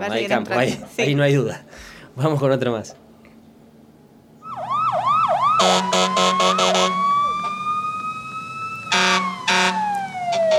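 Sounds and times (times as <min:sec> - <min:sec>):
speech: 0:00.0 - 0:03.0
ambulance siren: 0:04.4 - 0:10.5
ambulance stuttering horn blasts: 0:05.6 - 0:07.1, 0:08.9 - 0:10.5.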